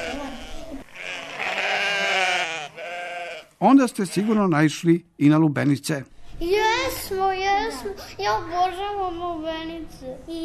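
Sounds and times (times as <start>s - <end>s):
sheep bleating in a wavering cry: 0.0s - 4.6s
speech: 3.6s - 10.4s.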